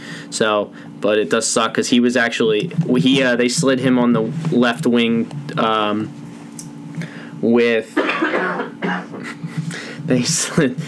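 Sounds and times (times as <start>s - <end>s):
speech: 0.3s - 6.2s, 7.4s - 9.0s, 10.1s - 10.8s
short raspy coughs with throat clearing: 7.9s - 9.7s.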